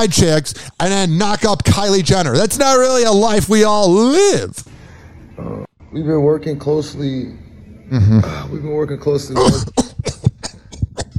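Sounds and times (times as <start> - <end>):
speech: 0.0 - 4.7, 5.9 - 9.8
man's exaggerated fake cough: 9.4 - 11.1.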